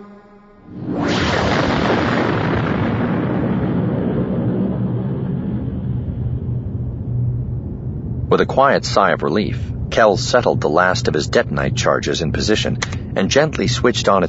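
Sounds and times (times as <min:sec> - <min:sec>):
fireworks display booming over a city at night: 0:00.7 - 0:12.0
speech: 0:08.4 - 0:14.2.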